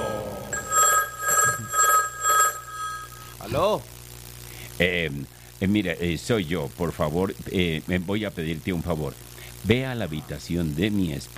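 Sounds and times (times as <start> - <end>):
telephone ringing in a house in North Yorkshire, England: 0.0 - 3.4
speech: 3.5 - 4.0, 4.8 - 11.3.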